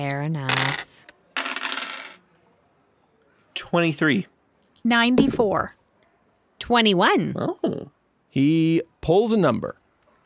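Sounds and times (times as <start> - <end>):
speech: 0.0 - 0.9, 3.6 - 5.8, 6.6 - 9.8
percentile dice rattling across a hard tabletop: 0.0 - 2.2.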